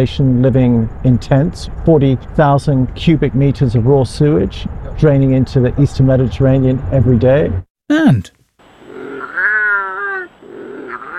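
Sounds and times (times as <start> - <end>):
speech: 0.0 - 8.4
British wildcat caterwauling with moaning yowls and wails: 8.8 - 11.1.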